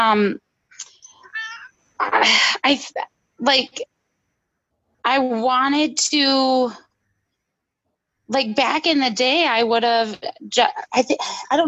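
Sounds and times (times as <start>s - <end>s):
speech: 0.0s - 0.4s, 2.0s - 3.9s, 5.0s - 6.8s, 8.3s - 11.6s
cat meowing and yowling: 1.2s - 1.7s.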